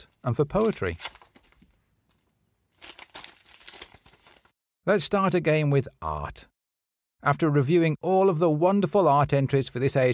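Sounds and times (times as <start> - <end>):
speech: 0.0 - 1.2, 4.8 - 6.5, 7.2 - 10.1
golden paper envelope crinkling and tearing open: 0.6 - 4.5.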